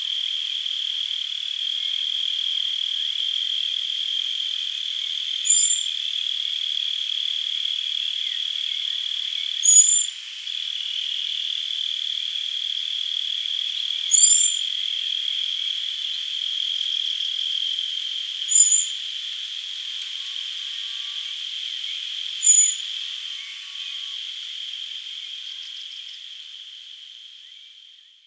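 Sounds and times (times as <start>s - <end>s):
loud unbroken insect drone: 0.0s - 28.2s
common blackbird Turdus merula thin high drawn-out whistles: 5.5s - 5.9s, 9.6s - 10.1s, 14.1s - 14.6s, 18.5s - 19.0s, 22.4s - 22.8s.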